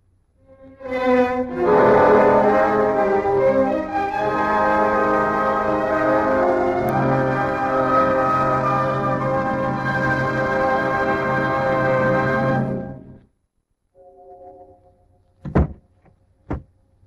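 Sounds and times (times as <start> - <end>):
low hum: 1.4 - 15.4
loud sustained music: 1.5 - 13.2
door shutting with solid thuds: 15.4 - 15.9.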